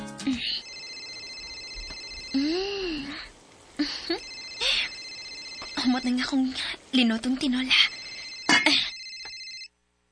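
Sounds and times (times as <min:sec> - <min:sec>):
speech: 0:00.3 - 0:00.5, 0:05.9 - 0:07.8
mobile phone ringtone with electronic tones: 0:00.6 - 0:02.6, 0:04.2 - 0:06.2, 0:07.8 - 0:09.7.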